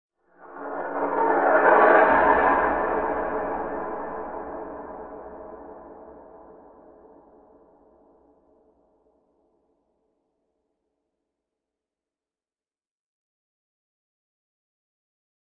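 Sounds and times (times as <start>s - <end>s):
eerie metal scrape ambience: 0.4s - 7.4s.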